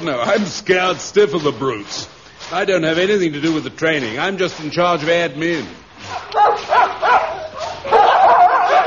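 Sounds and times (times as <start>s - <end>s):
speech: 0.0s - 6.7s
tracking dogs barking: 6.0s - 8.8s.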